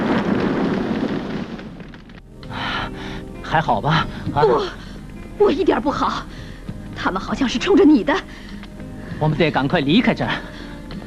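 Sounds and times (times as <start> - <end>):
car exploding in midair: 0.0 - 2.3
speech: 3.5 - 4.8, 5.4 - 6.4, 7.0 - 8.4, 9.2 - 10.5.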